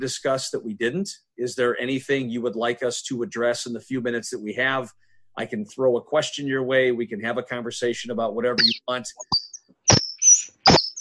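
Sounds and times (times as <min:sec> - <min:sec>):
speech: 0:00.0 - 0:09.5
person in a studio imitating bird chirps: 0:08.6 - 0:11.0.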